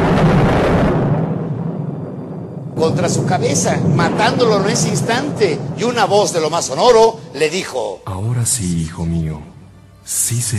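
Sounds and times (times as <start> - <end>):
thunderclap crash: 0.0 - 7.8
speech: 2.8 - 10.5.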